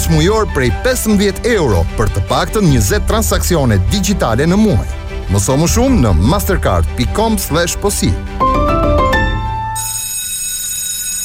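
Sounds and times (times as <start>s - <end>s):
speech: 0.1s - 8.4s
school bell ringing: 9.2s - 11.2s.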